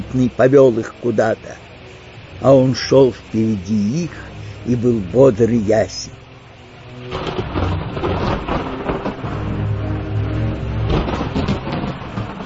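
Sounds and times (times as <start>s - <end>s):
constant hiss of heavy rain: 0.0s - 12.4s
speech: 0.1s - 1.6s, 2.4s - 6.2s
deep rolling thunder from a thunderstorm over a forest: 6.9s - 12.4s.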